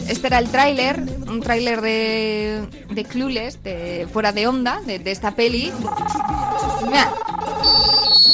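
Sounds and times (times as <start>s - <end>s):
speech: 0.1s - 7.3s
1990s mobile phone ringing with electronic tone: 5.7s - 8.3s
high piercing beep: 5.7s - 8.3s.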